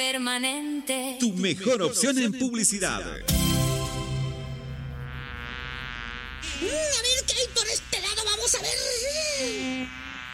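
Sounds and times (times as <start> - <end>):
speech: 0.1 - 3.6, 8.5 - 10.0
cartoonish fly buzzing: 3.3 - 10.3.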